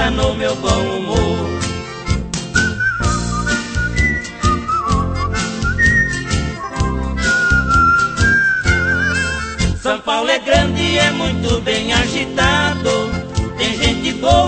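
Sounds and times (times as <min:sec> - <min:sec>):
busy instrumental backing with a steady beat: 0:00.2 - 0:09.9, 0:10.6 - 0:14.4
person whistling a melody: 0:02.5 - 0:09.8.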